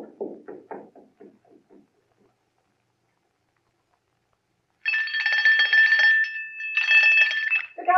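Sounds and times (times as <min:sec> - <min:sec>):
electric doorbell ringing with a harsh metallic jangle: 0:04.8 - 0:07.8.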